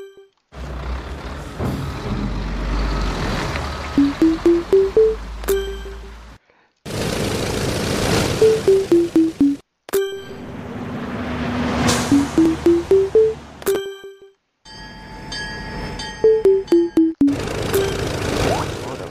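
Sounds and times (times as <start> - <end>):
busy noisy video game soundscape: 0.0 - 19.0
Skype notification ping of electronic blips: 4.0 - 6.1, 8.4 - 10.4, 12.1 - 14.3, 16.3 - 18.0.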